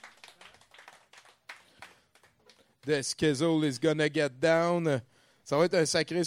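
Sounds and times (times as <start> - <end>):
small group clapping: 0.0 - 3.2
speech: 2.8 - 6.2.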